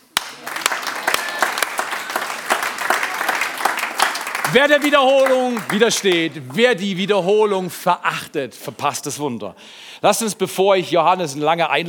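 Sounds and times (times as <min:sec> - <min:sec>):
audience of men applauding: 0:00.0 - 0:07.0
speech: 0:04.5 - 0:11.8.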